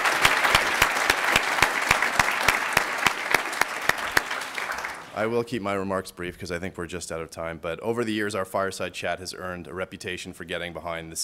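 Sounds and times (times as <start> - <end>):
audience applause: 0.0 - 5.4
speech: 5.2 - 11.2.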